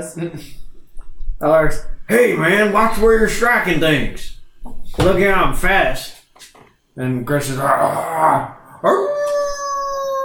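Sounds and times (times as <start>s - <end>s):
speech: 0.0s - 0.7s, 1.4s - 6.2s, 7.0s - 9.4s
echoing wolf-like howl: 7.7s - 10.2s.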